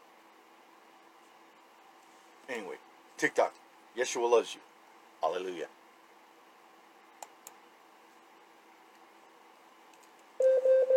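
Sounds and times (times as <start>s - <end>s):
speech: 2.5s - 5.8s
smart speaker timer alarm beeping: 10.4s - 10.9s.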